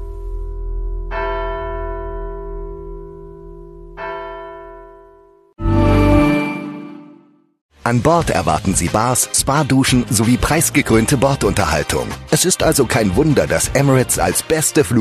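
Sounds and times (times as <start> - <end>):
deep church bell tolling: 0.0 - 5.6
speech: 7.9 - 14.9.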